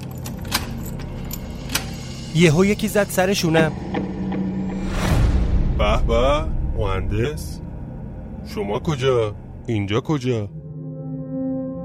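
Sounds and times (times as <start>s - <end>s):
key turning in the lock of a closed yard door: 0.0s - 2.0s
steady low hum: 0.0s - 11.8s
speech: 2.3s - 4.1s, 5.8s - 7.6s, 8.5s - 10.6s.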